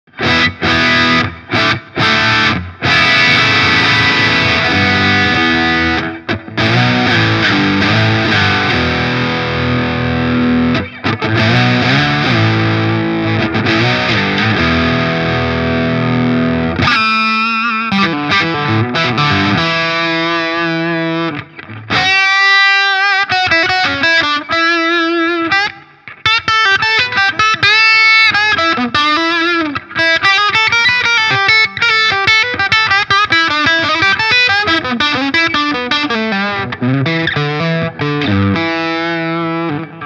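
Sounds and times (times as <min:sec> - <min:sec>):
distorted electric guitar with humbucker pickup: 0:00.0 - 0:40.0.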